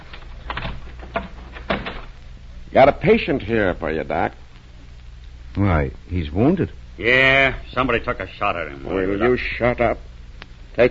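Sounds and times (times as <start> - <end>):
door being unlocked and opened: 0.0 - 2.1
speech: 2.7 - 4.4, 5.6 - 10.1.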